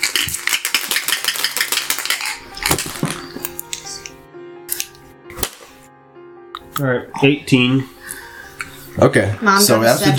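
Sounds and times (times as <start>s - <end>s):
percentile dice rattling across a hard surface: 0.0s - 3.0s
speech: 6.8s - 8.0s, 9.0s - 10.1s.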